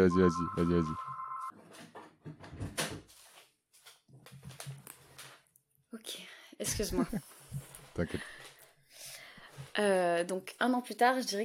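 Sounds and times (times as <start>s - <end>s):
speech: 0.0s - 1.1s, 6.8s - 7.3s, 8.0s - 8.4s, 9.8s - 11.4s
telephone ringing with a steady electronic tone: 0.0s - 1.5s.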